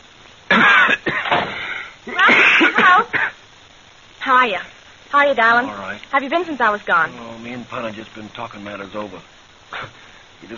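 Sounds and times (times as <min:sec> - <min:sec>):
person coughing in a rough wheezy fit: 0:00.5 - 0:03.4
speech: 0:04.3 - 0:10.5.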